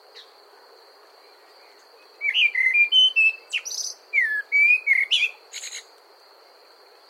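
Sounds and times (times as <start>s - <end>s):
common blackbird singing: 1.3s - 5.9s.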